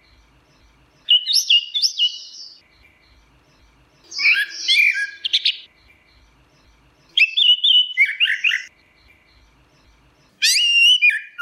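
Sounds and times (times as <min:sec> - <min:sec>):
orange-headed thrush whistled song: 0:01.0 - 0:02.6, 0:04.0 - 0:05.7, 0:07.0 - 0:08.7, 0:10.3 - 0:11.4.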